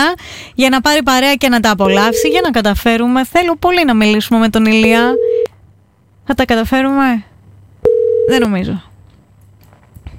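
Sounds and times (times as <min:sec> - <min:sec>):
speech: 0:00.0 - 0:05.3, 0:06.3 - 0:07.3, 0:08.3 - 0:08.9
telephone ring tone: 0:01.9 - 0:02.6, 0:04.8 - 0:05.5, 0:07.9 - 0:08.5.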